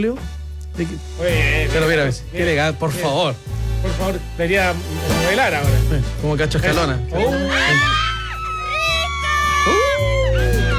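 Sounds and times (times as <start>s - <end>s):
speech: 0.0s - 8.1s
television studio audience shouting and cheering: 7.1s - 10.7s.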